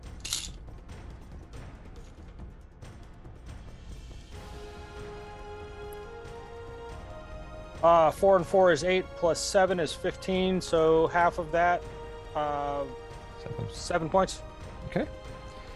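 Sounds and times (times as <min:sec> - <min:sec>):
several dice rolling and clattering: 0:00.2 - 0:00.6
speech: 0:07.8 - 0:15.2.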